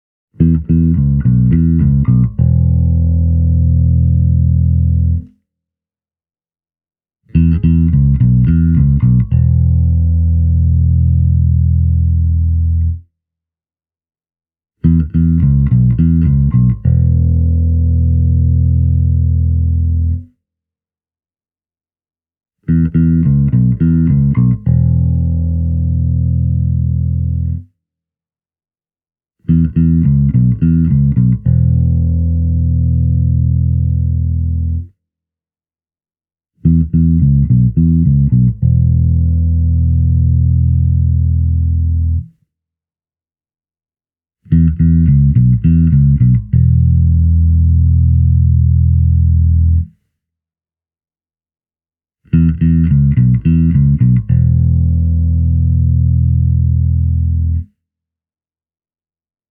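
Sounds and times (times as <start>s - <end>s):
1986 Japanese Jazz Bass through digital modelling bass amplifier and Markbass Standard 410HF cabinet: 0.4s - 5.2s, 7.4s - 13.0s, 14.9s - 20.2s, 22.7s - 27.6s, 29.5s - 34.8s, 36.7s - 42.3s, 44.5s - 49.9s, 52.4s - 57.6s.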